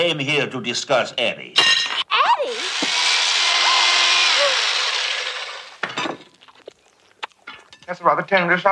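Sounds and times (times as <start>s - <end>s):
speech: 0.0s - 1.8s, 7.9s - 8.7s
electric carving knife whirring: 2.5s - 5.8s.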